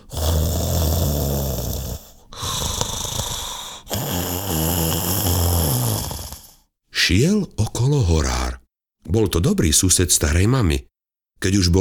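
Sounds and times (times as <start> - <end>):
wolf snoring on a featherbed: 0.0 - 6.6
speech: 7.1 - 8.5, 9.1 - 11.8.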